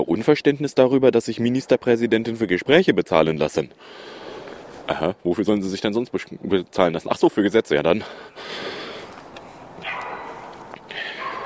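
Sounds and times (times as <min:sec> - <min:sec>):
speech: 0:00.1 - 0:04.2, 0:04.9 - 0:08.7
steady hiss: 0:00.5 - 0:11.4
dogs barking: 0:09.8 - 0:11.4.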